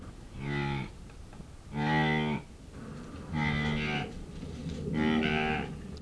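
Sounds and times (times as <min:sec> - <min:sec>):
female Saiga tatarica quietly mooing: 0:01.7 - 0:05.9.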